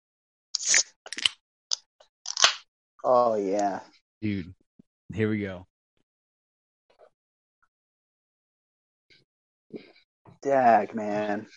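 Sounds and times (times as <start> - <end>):
soda cans being popped open: 0.6 - 2.6
speech: 3.1 - 5.7, 9.7 - 11.5.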